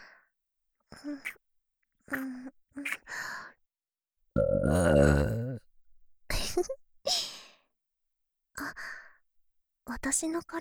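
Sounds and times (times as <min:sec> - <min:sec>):
speech: 0:01.0 - 0:01.4, 0:02.1 - 0:02.6, 0:10.0 - 0:10.5
person burping: 0:04.4 - 0:05.6.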